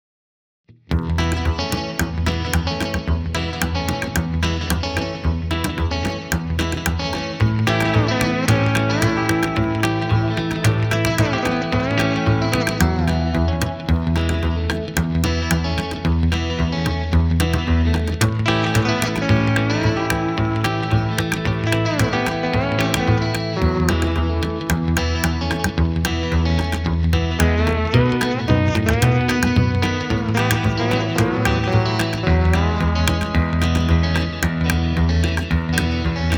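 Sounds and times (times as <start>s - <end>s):
mysterious bass: 0.9s - 36.3s.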